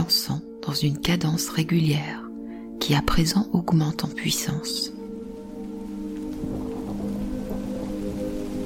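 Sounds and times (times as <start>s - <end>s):
speech: 0.7s - 2.2s, 2.9s - 5.0s
rain falling in a steady patter: 4.1s - 8.6s
low sustained humming drone: 4.9s - 8.6s.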